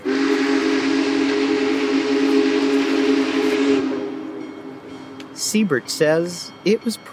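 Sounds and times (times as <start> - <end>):
hissing steam from a steam locomotive: 0.0 - 4.3
steam locomotive whistle blaring: 0.0 - 5.4
speech: 5.5 - 7.1.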